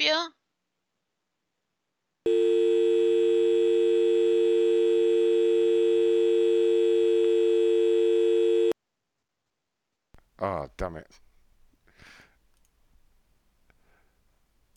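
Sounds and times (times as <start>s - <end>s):
speech: 0.0s - 0.4s, 10.8s - 11.3s
steady telephone off-hook tone from a line left off the hook: 2.3s - 8.8s.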